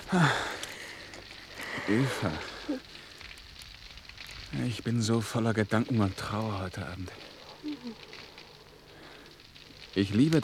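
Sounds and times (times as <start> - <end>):
campfire crackling: 0.0 - 10.4
campfire pops: 0.0 - 10.4
speech: 0.1 - 0.5, 1.8 - 2.8, 4.5 - 8.1, 10.0 - 10.4.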